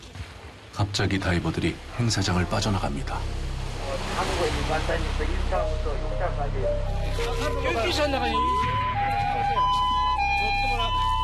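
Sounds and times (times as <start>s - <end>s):
speech: 0.8s - 11.1s
ambulance siren two-tone wail at the seaside: 7.9s - 11.2s.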